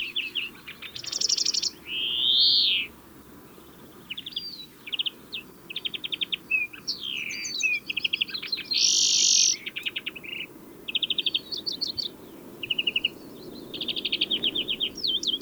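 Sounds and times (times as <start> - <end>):
European greenfinch Chloris chloris song: 0.0 - 15.4.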